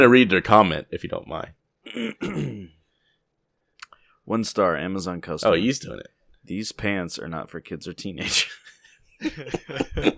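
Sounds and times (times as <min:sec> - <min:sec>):
speech: 0:00.0 - 0:02.8, 0:04.3 - 0:10.1
throat clearing: 0:01.8 - 0:02.8
laughter: 0:08.2 - 0:10.1.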